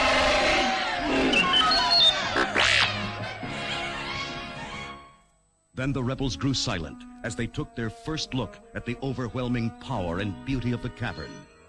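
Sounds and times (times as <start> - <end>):
crowd cheering and squealing excitedly: 0.0 - 3.1
speech: 5.8 - 11.5.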